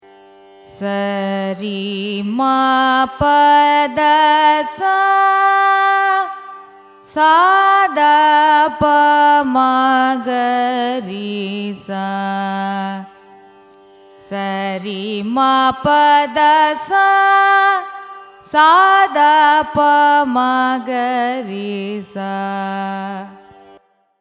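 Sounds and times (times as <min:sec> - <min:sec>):
raga malahari ascending and descending scale in Carnatic music: 0:00.0 - 0:24.1.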